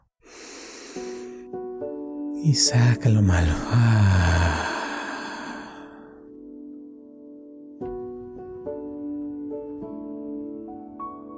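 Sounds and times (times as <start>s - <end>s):
deep inhale during a guided morning meditation: 0.2s - 1.4s, 3.6s - 6.3s
speech: 2.4s - 4.7s.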